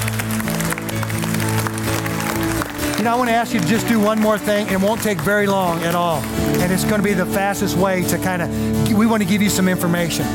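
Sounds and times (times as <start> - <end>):
audience clapping after a prayer: 0.0 - 8.1
speech: 3.0 - 10.3.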